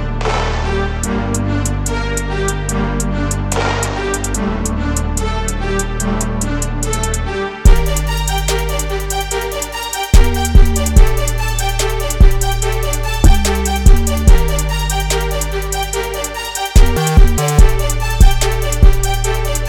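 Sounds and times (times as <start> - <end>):
rap beat: 0.2 - 19.6.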